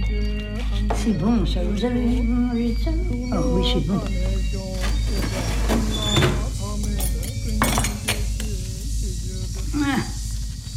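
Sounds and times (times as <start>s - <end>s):
steady low hum: 0.0s - 10.7s
speech: 1.0s - 4.4s
dishes and cutlery clinking in a kitchen while taking out fish: 6.9s - 8.3s.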